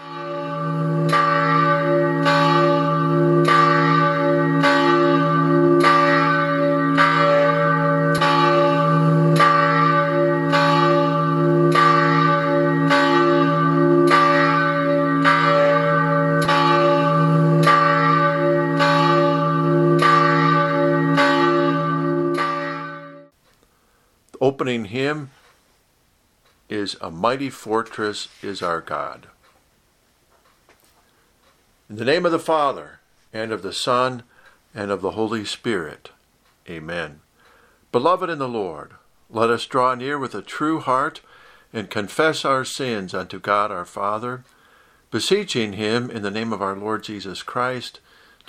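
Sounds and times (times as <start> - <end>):
church bell tolling: 0.0 - 23.4
speech: 27.2 - 29.4, 32.0 - 37.2, 37.9 - 48.4.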